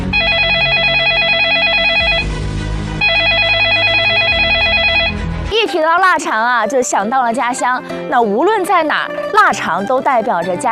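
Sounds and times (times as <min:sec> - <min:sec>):
loud electronic telephone ring: 0:00.0 - 0:02.3, 0:03.0 - 0:05.2
speech: 0:06.2 - 0:10.7.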